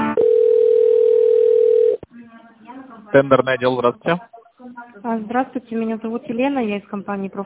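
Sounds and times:
buzzy harmonic telephone line tone during a call transfer: 0.2s - 2.0s
speech: 3.1s - 4.4s, 5.0s - 7.4s.

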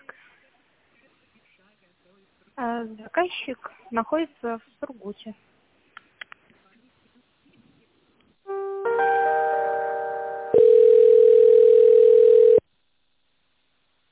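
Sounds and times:
speech: 2.6s - 5.5s
faint telephone line clicks while connecting a call: 5.9s - 6.6s
telephone ringing tone while connecting a call: 9.3s - 12.6s.

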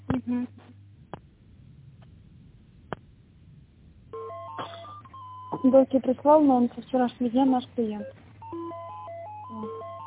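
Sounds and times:
low phone line hum: 0.0s - 10.0s
speech: 0.3s - 0.6s, 5.6s - 8.2s
telephone dialing tones as a call is transferred: 4.2s - 5.8s, 8.0s - 10.0s.

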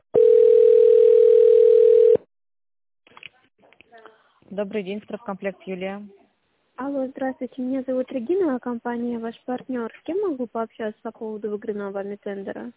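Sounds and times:
telephone tones while a call is transferred to a tender department: 0.2s - 2.2s
speech: 4.6s - 6.2s, 6.9s - 12.7s.

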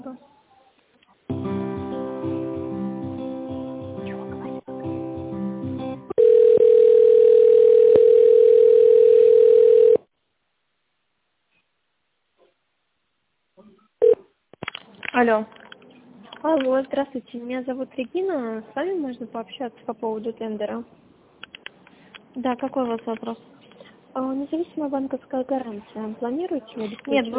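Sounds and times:
telephone line tones while a call is transferred: 6.1s - 10.1s
speech: 15.2s - 15.6s, 16.4s - 21.0s, 22.4s - 23.5s, 24.2s - 27.3s.

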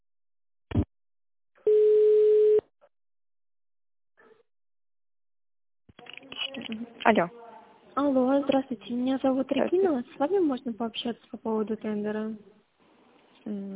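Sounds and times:
telephone ringback tone while a call is connected: 1.7s - 2.6s
speech: 7.1s - 7.4s, 8.0s - 12.6s, 13.4s - 13.7s.

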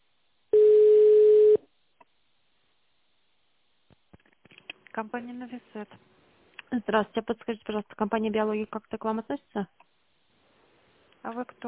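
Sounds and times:
telephone ringback tone during call transfer to a sales department: 0.6s - 1.6s
speech: 5.0s - 9.8s, 11.2s - 11.6s.

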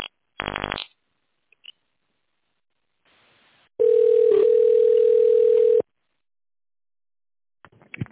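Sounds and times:
telephone ringback tone while a call is placed: 3.8s - 5.8s.

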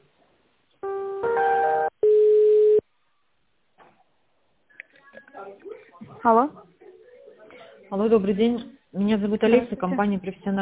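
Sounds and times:
telephone line tones while a business call is transferred: 0.8s - 2.8s
speech: 6.2s - 6.6s, 7.9s - 10.5s.

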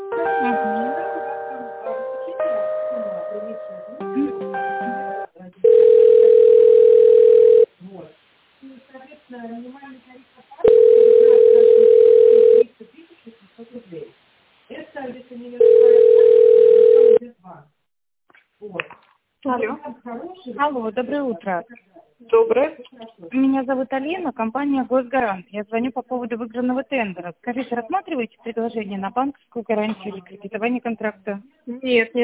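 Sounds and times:
telephone electronic hold melody: 0.0s - 5.3s
telephone line tones while a call is transferred: 5.6s - 7.7s, 10.6s - 12.6s, 15.6s - 17.2s
speech: 20.4s - 32.2s.

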